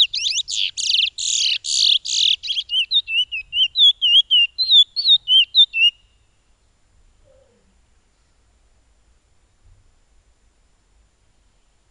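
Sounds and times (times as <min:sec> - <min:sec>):
piolet bird song: 0:00.0 - 0:06.5.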